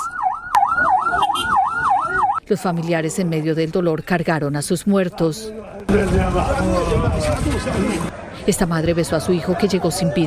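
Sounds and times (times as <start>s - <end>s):
ambulance siren wailing in a quick up-and-down sweep: 0.0s - 2.4s
low rumble of road noise: 0.0s - 10.2s
speech: 2.5s - 10.2s.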